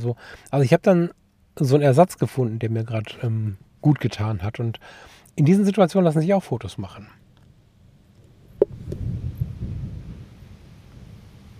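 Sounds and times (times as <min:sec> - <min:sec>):
speech: 0:00.0 - 0:07.2
low rolling thunder rumbling: 0:08.6 - 0:11.5.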